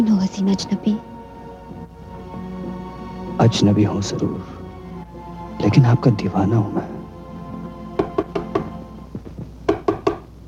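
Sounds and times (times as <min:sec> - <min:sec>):
speech: 0:00.0 - 0:01.1, 0:03.4 - 0:04.6, 0:05.6 - 0:07.0
knocking on a door: 0:08.0 - 0:10.3.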